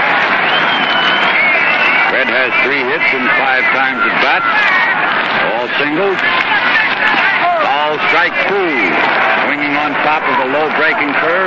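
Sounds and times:
big stadium crowd roaring: 0:00.0 - 0:11.4
speech: 0:02.4 - 0:07.2, 0:07.9 - 0:11.4.

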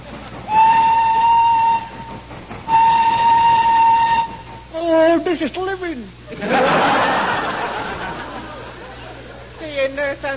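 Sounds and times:
steam train chugging slowly up the side of a mountain: 0:00.0 - 0:10.3
steam train whistle blasts: 0:00.5 - 0:04.8
speech: 0:05.4 - 0:06.6, 0:10.1 - 0:10.3
laughter: 0:06.3 - 0:09.6.

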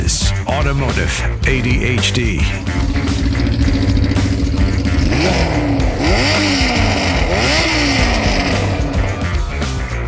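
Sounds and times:
speech: 0:00.1 - 0:03.3, 0:05.2 - 0:06.8
1982 Yamaha Maxim 550 motorcycle engine idling and revving: 0:02.2 - 0:09.9.

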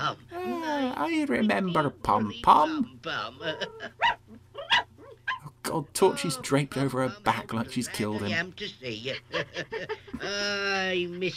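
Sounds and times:
speech: 0:00.1 - 0:04.2, 0:05.7 - 0:11.3
small dog yapping: 0:03.7 - 0:05.5.

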